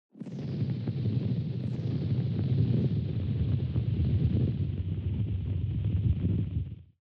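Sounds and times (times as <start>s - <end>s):
heavy wind: 0.8s - 6.9s.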